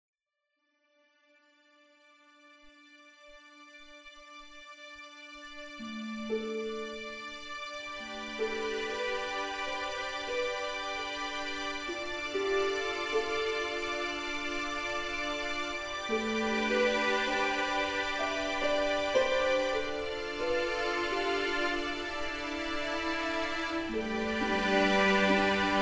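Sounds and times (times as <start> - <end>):
calm ambient game music: 3.3 - 25.7.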